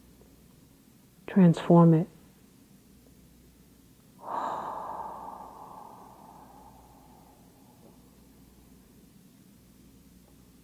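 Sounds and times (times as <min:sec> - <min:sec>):
speech: 0:01.3 - 0:02.1
deep slow breath drawn in: 0:04.2 - 0:08.6.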